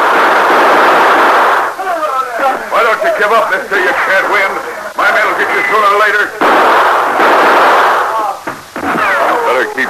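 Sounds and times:
gunfire in a shootout between outlaws and defenders of a shack: 0.0 - 1.8, 6.4 - 9.8
speech: 3.2 - 7.4, 9.5 - 9.8.

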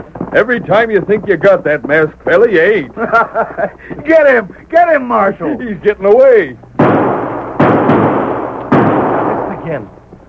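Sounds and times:
speech: 0.3 - 7.1, 9.7 - 10.2
laughter: 2.8 - 4.2
gunshots fired at a fleeing masked rider: 6.8 - 10.0.

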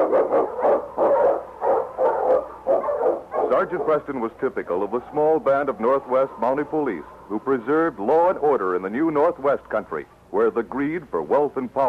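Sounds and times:
Eskimo husky lead sled dog barking excitedly: 0.0 - 4.1
speech: 3.6 - 11.8.

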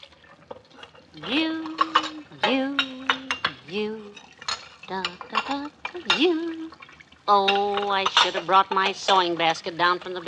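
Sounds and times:
dishes clattering while being washed: 0.2 - 10.2
speech: 1.2 - 1.7, 3.7 - 4.1, 4.9 - 6.7, 7.3 - 10.2
person humming a sustained tune: 1.2 - 4.2, 4.9 - 6.8.

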